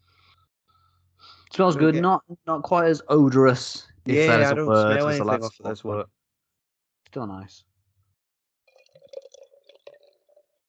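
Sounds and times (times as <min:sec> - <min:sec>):
speech: 0:01.6 - 0:06.2, 0:07.1 - 0:07.7
beer glugging and splashing into a glass: 0:08.7 - 0:10.6.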